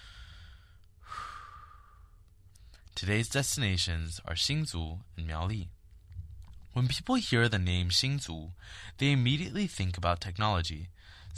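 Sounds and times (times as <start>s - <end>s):
deep soft airy breath: 0.0s - 2.9s, 8.6s - 9.0s, 11.0s - 11.3s
quiet steady hum: 0.0s - 11.3s
speech: 3.0s - 5.8s, 6.8s - 11.3s.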